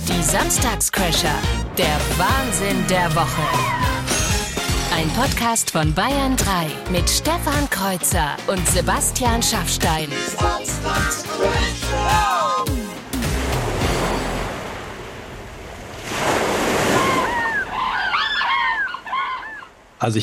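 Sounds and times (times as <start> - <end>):
speech: 0.2 - 3.9, 4.9 - 12.3, 20.0 - 20.2
ocean waves breaking on a shore: 0.9 - 5.2, 11.1 - 20.1
high wailing bird calls: 16.9 - 19.9.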